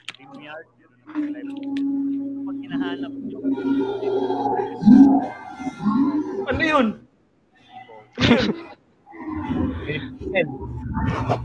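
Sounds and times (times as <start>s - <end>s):
speech: 0.2s - 7.0s, 8.2s - 8.6s, 9.9s - 11.4s
dinosaur roar sound effect: 1.2s - 7.0s, 9.1s - 11.4s.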